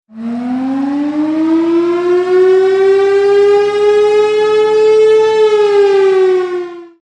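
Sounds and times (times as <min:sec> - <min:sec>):
nuclear explosion alarm siren: 0:00.1 - 0:07.0.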